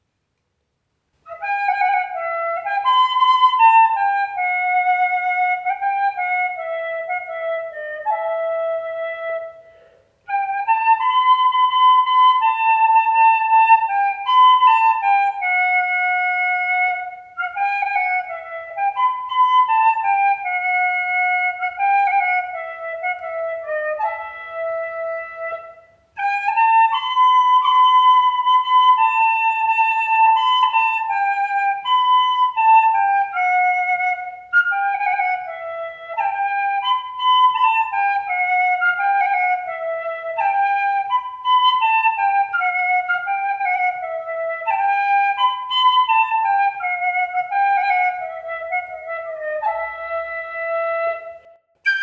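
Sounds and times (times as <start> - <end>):
flute: 1.2 - 52.0.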